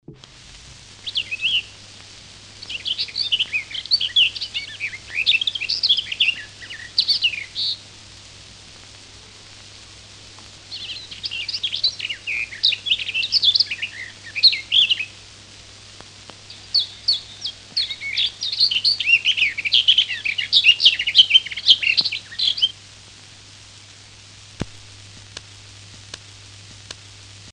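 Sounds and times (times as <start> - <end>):
garden warbler: 1.0 - 1.8, 2.5 - 7.8, 10.7 - 15.2, 16.4 - 22.8.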